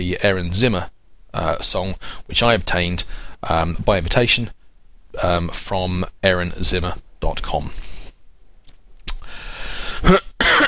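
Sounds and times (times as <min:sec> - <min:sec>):
speech: 0:00.0 - 0:07.9, 0:10.0 - 0:10.3
person coughing: 0:10.0 - 0:10.6.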